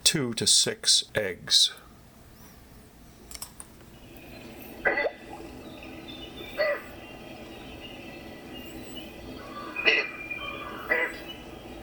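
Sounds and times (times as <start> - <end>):
background hiss: 0.0 - 11.8
speech: 0.1 - 1.8
Yellow-crowned Night Heron harsh squawks: 6.5 - 7.0, 9.4 - 11.8.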